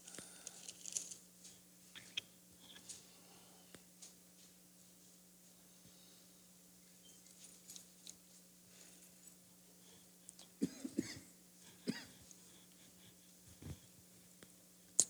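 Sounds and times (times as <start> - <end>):
steady low electrical hum: 0.0 - 15.0
person coughing: 10.6 - 12.2.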